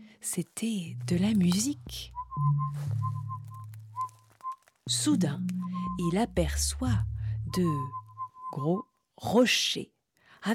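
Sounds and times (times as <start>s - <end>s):
speech: 0.2s - 3.2s, 4.9s - 10.5s
low steady hum: 0.7s - 3.9s, 4.9s - 8.4s
person whistling a short wandering tune on a forest path: 2.1s - 4.6s, 5.4s - 6.2s, 7.4s - 8.8s.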